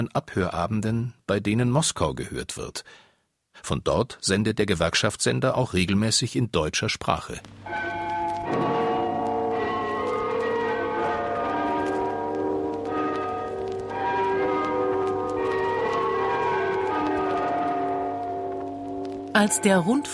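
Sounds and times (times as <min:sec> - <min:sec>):
speech: 0:00.0 - 0:08.7, 0:19.4 - 0:20.1
tower bells chiming a tune from a bell tower: 0:07.7 - 0:20.1.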